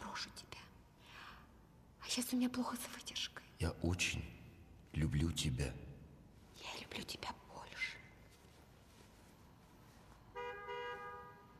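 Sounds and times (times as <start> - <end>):
speech: 2.2 - 5.9, 7.0 - 7.3
car horn honking: 10.3 - 11.5.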